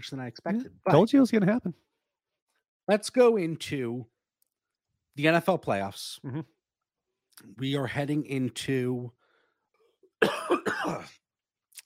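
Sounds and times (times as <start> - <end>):
speech: 0.0 - 1.9, 2.9 - 4.1, 5.2 - 6.6, 7.4 - 9.2
person with a cold coughing harshly: 10.2 - 11.2.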